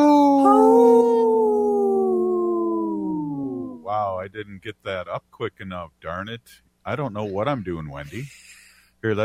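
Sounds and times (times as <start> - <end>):
wolf howling: 0.0 - 3.9
speech: 4.2 - 9.2.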